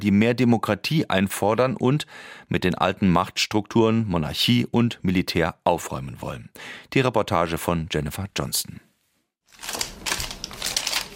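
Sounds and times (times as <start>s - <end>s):
speech: 0.0s - 8.9s
receipts rustling as a stack is leafed through: 9.5s - 11.1s.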